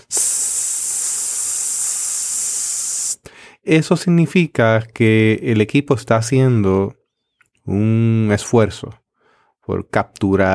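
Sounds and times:
voice imitating white-noise hiss of a low-cost audio console's microphone input: 0:00.0 - 0:03.2
speech: 0:03.6 - 0:07.0, 0:07.7 - 0:09.0, 0:09.6 - 0:10.5.

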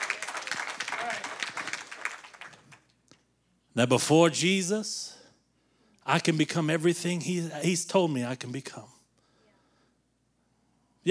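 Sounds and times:
audience clapping: 0:00.0 - 0:03.0
speech: 0:03.8 - 0:05.2, 0:06.1 - 0:09.0.

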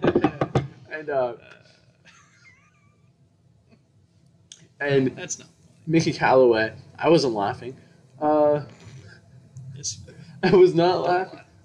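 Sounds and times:
knocking on wood: 0:00.0 - 0:00.8
speech: 0:01.0 - 0:01.7, 0:04.8 - 0:08.8, 0:09.8 - 0:11.4.

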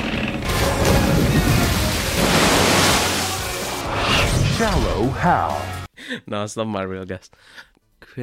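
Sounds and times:
big water splash with roar of spray: 0:00.5 - 0:03.9
speech: 0:04.6 - 0:08.2.

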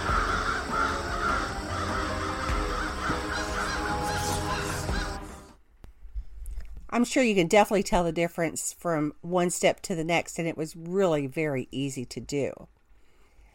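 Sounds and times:
layered chorus of many crows cawing: 0:00.0 - 0:05.6
speech: 0:07.0 - 0:12.8.

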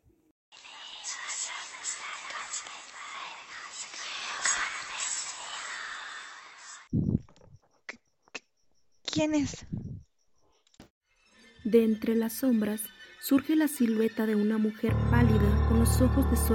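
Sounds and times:
eerie breathy whispering through a wall beside a bed: 0:00.6 - 0:06.9
speech: 0:09.2 - 0:09.8, 0:11.7 - 0:16.5.

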